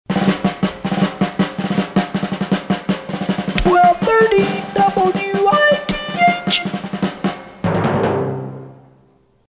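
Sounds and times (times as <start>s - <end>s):
fife and drums through a Sonovox: 0.1s - 8.4s.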